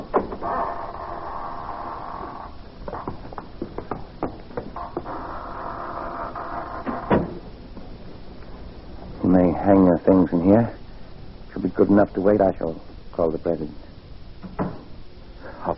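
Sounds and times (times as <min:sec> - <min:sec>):
door shutting with a thud: 0:06.8 - 0:07.4, 0:14.4 - 0:14.9
speech: 0:09.4 - 0:10.8, 0:11.6 - 0:13.8.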